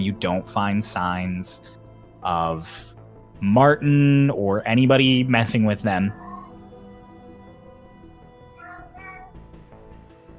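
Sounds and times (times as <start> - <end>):
speech: 0.0 - 6.2
cat meowing: 5.9 - 6.7, 8.5 - 9.4.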